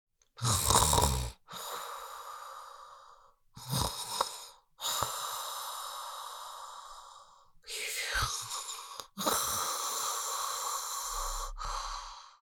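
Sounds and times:
adult female snoring while sleeping: 0.4 - 12.4
adult female sleeping with heavy breaths: 1.5 - 3.4, 4.8 - 12.4.

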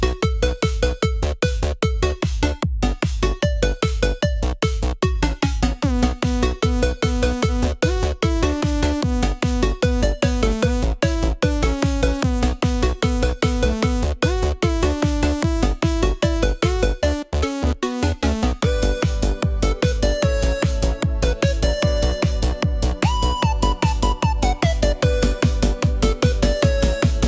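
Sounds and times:
gaming arcade sound: 0.1 - 27.2.

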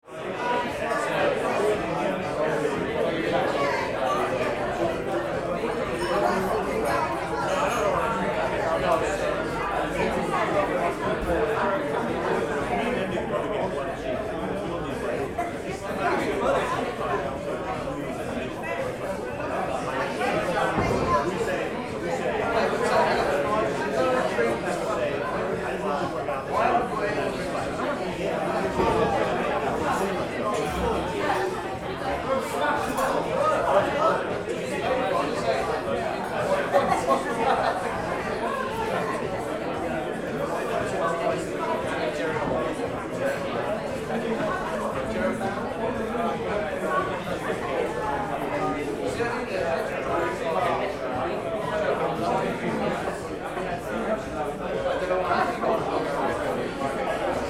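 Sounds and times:
lively crowd in a pub interior: 0.0 - 57.4.

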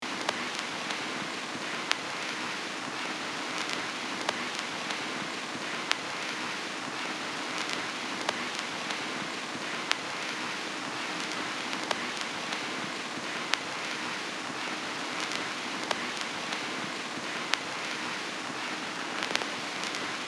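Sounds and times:
vintage vinyl crackle noise on a record player: 0.0 - 20.2.

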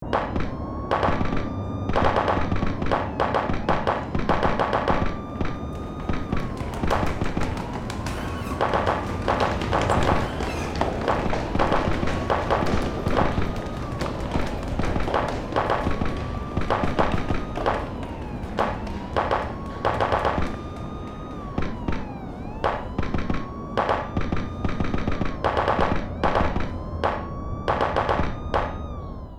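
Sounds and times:
distant gunshots: 0.0 - 22.0, 22.6 - 28.8
indoor battlefield sounds: 0.0 - 29.3.

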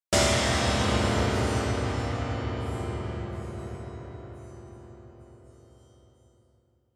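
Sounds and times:
crash on piano strings: 0.2 - 5.2.

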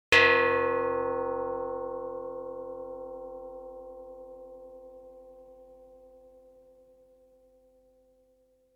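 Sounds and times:
small soft gong hit: 0.2 - 4.2.

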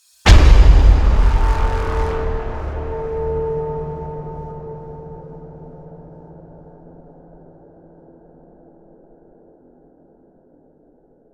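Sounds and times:
epic cinematic impact: 0.3 - 8.6.

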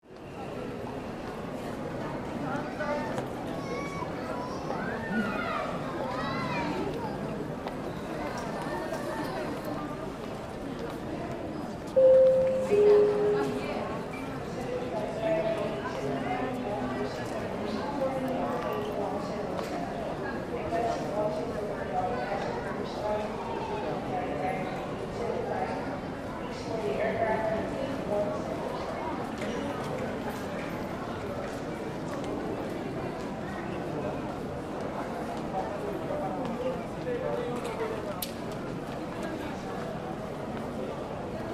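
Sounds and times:
people walking by in an airport: 0.0 - 41.5
airport public address announcement: 11.9 - 15.6.

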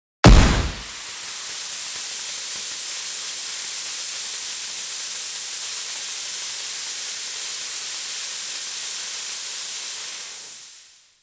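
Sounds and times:
smoke grenade explosion: 0.2 - 1.3
smoke grenade air hiss: 0.6 - 11.2.

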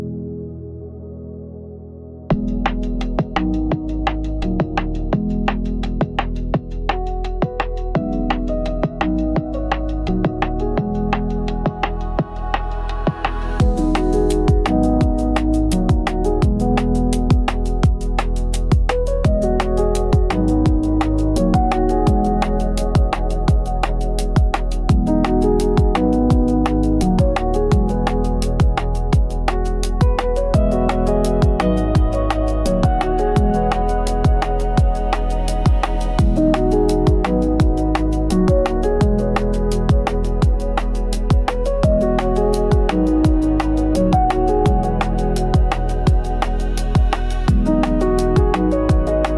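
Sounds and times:
soft pop beat: 2.3 - 49.3.

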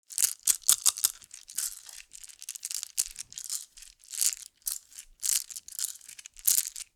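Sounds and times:
game tokens clattering in hands: 0.1 - 6.9.

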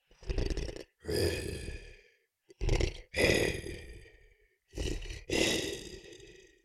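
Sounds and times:
cartoon lion voice breathing: 0.0 - 6.6.

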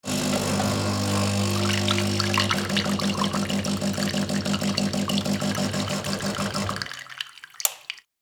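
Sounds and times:
coffee machine brewing coffee: 0.0 - 8.0.

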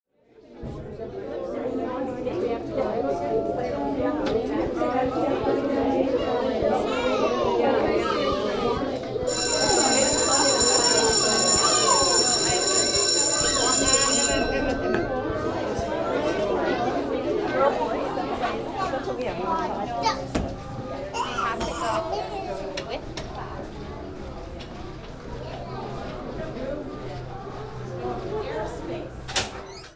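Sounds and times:
high school hallway ambience: 1.1 - 29.8
high school bell ringing: 9.3 - 16.4.

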